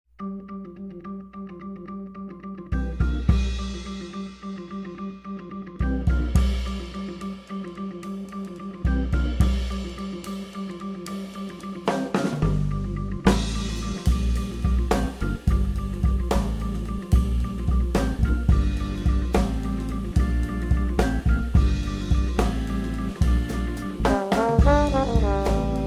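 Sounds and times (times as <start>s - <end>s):
blues band playing: 0.6s - 25.8s.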